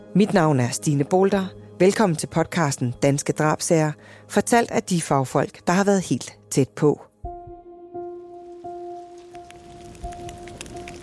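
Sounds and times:
speech: 0:00.2 - 0:07.1
heavy rain pattering and splashing on a surface: 0:08.4 - 0:11.0
sharp drips and crackles: 0:08.5 - 0:11.0.

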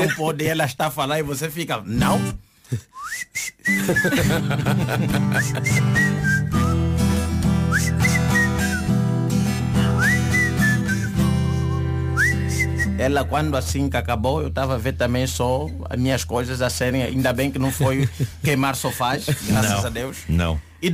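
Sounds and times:
laughter: 0:00.0 - 0:00.3, 0:03.8 - 0:06.1, 0:17.2 - 0:20.2
speech: 0:00.1 - 0:06.6, 0:13.0 - 0:20.9
person whistling short rising melodic phrases: 0:02.7 - 0:04.4, 0:05.3 - 0:13.0
loud musical backing: 0:03.8 - 0:20.0.

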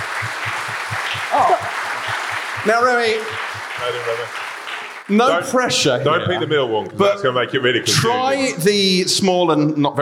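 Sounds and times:
live audience applause: 0:00.0 - 0:05.6
person cheering: 0:01.2 - 0:02.0
speech: 0:02.6 - 0:04.4, 0:05.1 - 0:10.0.

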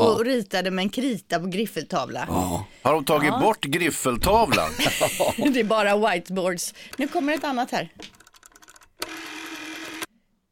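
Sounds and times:
speech: 0:00.1 - 0:08.2
laughter: 0:04.4 - 0:05.7
old classic rotary telephone dial turning and spinning back: 0:06.9 - 0:10.1.

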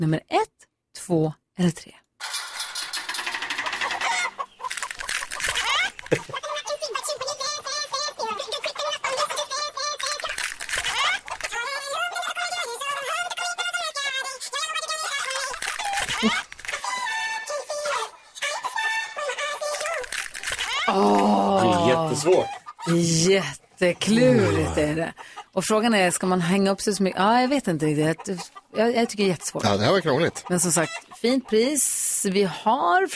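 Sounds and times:
speech: 0:00.0 - 0:02.3, 0:06.1 - 0:06.4, 0:16.2 - 0:16.4, 0:22.2 - 0:33.1
hens clucking and squawking in a henhouse: 0:02.2 - 0:20.0, 0:21.5 - 0:33.0
hens cackling in a henhouse: 0:02.3 - 0:14.0, 0:14.9 - 0:20.0, 0:20.9 - 0:26.3, 0:27.2 - 0:32.2.

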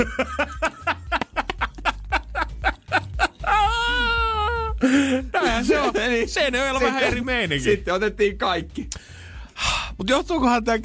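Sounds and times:
speech: 0:00.0 - 0:00.6, 0:05.9 - 0:09.0, 0:10.0 - 0:10.8
laughter: 0:00.0 - 0:07.3
child crying: 0:03.4 - 0:04.9.

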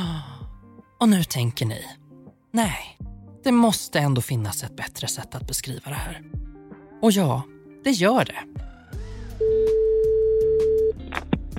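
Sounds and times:
soft music: 0:00.0 - 0:11.5
speech: 0:01.0 - 0:08.7
ringback tone of an outgoing phone call: 0:09.4 - 0:11.0.

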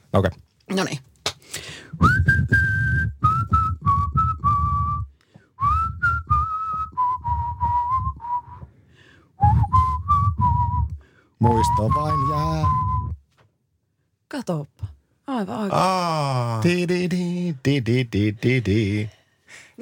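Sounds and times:
speech: 0:00.1 - 0:01.1, 0:11.6 - 0:12.8, 0:14.4 - 0:14.7, 0:15.3 - 0:19.2
person whistling a tune: 0:01.9 - 0:08.7, 0:09.4 - 0:13.2.

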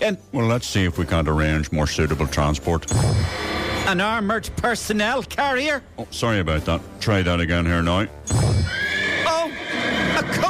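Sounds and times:
speech: 0:00.0 - 0:08.8
horse whinnying: 0:08.3 - 0:10.4.

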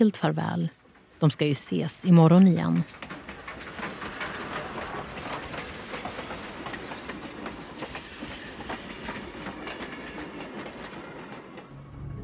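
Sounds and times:
speech: 0:00.0 - 0:03.2
train wheels clattering on tracks: 0:02.4 - 0:11.7.

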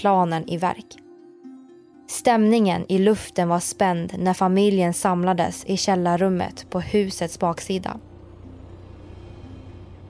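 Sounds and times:
speech: 0:00.0 - 0:01.0, 0:02.1 - 0:08.1
truck engine idling outside a house at night: 0:07.1 - 0:10.0.

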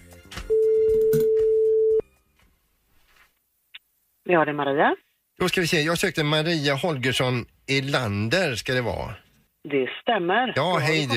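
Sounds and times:
telephone ringing tone on an outgoing call: 0:00.5 - 0:02.0
speech: 0:04.3 - 0:11.1.

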